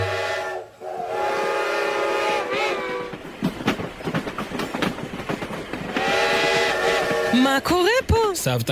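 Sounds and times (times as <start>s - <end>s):
train whistle: 0.0s - 3.1s, 5.9s - 7.6s
train wheels clickety-clack as a train pulls away: 2.3s - 8.7s
speech: 7.5s - 8.7s.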